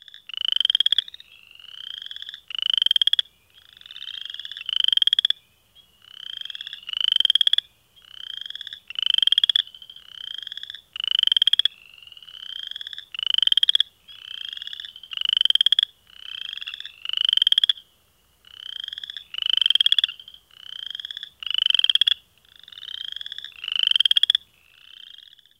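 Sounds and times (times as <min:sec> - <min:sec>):
western chorus frogs trilling: 0:00.0 - 0:25.5.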